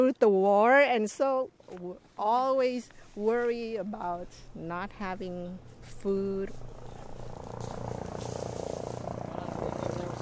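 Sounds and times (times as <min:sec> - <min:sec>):
speech: 0:00.0 - 0:06.8
helicopters hovering overhead with thudding rotors: 0:02.9 - 0:10.2.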